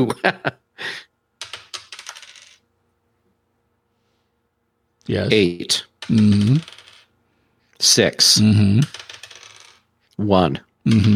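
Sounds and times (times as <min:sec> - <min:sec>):
speech: 0:00.0 - 0:01.0, 0:05.1 - 0:06.8, 0:07.8 - 0:09.2, 0:10.2 - 0:11.1
Foley dice roll: 0:01.4 - 0:02.6, 0:06.0 - 0:07.1, 0:08.8 - 0:09.9, 0:10.9 - 0:11.1.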